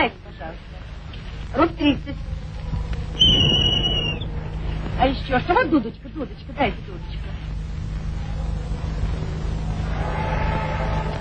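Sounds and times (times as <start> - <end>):
people talking: 0.0 - 2.3, 4.8 - 9.6
steady hum: 0.0 - 11.2
short shrill whistle blast: 3.2 - 4.3.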